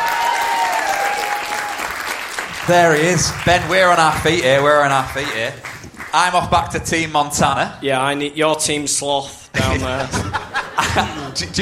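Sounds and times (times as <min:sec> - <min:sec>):
audience applause at a live quiz night in Manchester: 0:00.0 - 0:06.4
speech: 0:02.7 - 0:11.6
laughter: 0:09.6 - 0:11.6.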